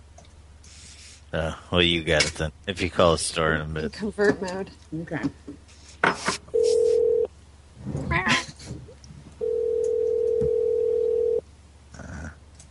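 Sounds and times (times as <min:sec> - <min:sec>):
speech: 0:01.3 - 0:05.6
steady humming telephone tone as a call is placed: 0:06.5 - 0:07.3, 0:09.4 - 0:11.4.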